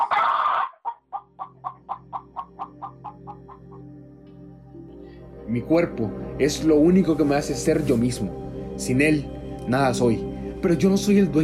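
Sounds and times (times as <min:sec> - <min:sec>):
hen squawking: 0:00.0 - 0:03.8
speech: 0:05.5 - 0:11.4.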